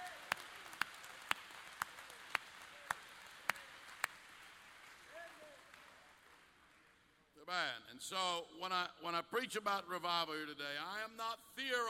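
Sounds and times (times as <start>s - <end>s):
group clapping hands in unison in a reverberant room: 0.0s - 7.3s
speech: 7.5s - 11.8s.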